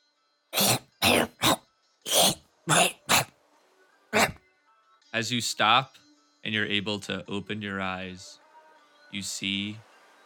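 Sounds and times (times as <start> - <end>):
harsh throaty coughs: 0.6 - 3.3, 4.2 - 4.4
speech: 5.2 - 8.4, 9.1 - 9.9.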